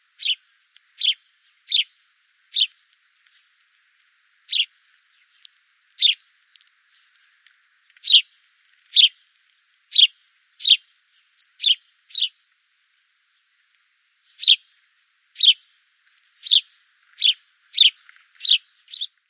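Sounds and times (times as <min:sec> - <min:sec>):
house sparrow calling: 0:00.2 - 0:03.5, 0:04.5 - 0:05.4, 0:06.0 - 0:06.3, 0:08.0 - 0:08.3, 0:08.9 - 0:09.2, 0:09.9 - 0:12.4, 0:14.3 - 0:14.7, 0:15.4 - 0:15.7, 0:16.4 - 0:19.2.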